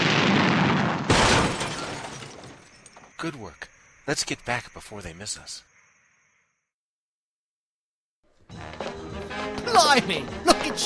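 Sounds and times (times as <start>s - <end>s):
bomb exploding: 0.0s - 2.5s
speech: 3.2s - 5.7s, 9.8s - 10.8s.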